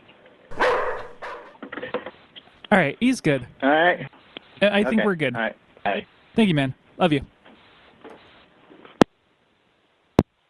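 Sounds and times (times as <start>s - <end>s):
dog barking and yelping: 0.5s - 1.6s
speech: 2.7s - 7.4s.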